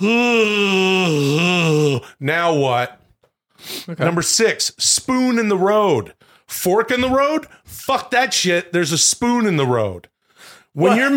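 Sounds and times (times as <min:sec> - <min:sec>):
exaggerated yawn: 0:00.0 - 0:02.2
speech: 0:00.0 - 0:03.0, 0:03.6 - 0:10.1, 0:10.8 - 0:11.1.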